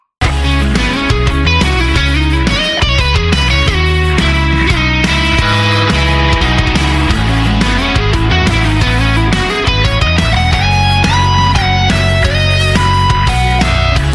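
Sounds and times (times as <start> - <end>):
guitar riff playing intervals: 0.2 - 14.1.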